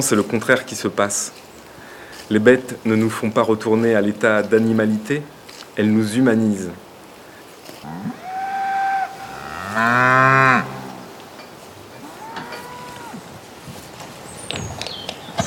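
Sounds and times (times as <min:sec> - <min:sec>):
speech: 0:00.0 - 0:01.6, 0:02.3 - 0:06.8, 0:09.8 - 0:10.7
cows mooing: 0:07.8 - 0:13.3.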